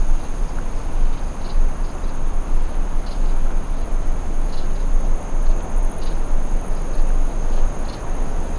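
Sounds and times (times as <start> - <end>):
grasshopper chirping outdoors: 0.0 - 8.5.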